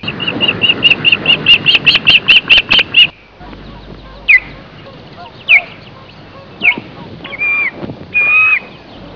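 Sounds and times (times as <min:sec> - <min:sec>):
osprey Pandion haliaetus whistled calls and chirps: 0:00.0 - 0:09.1.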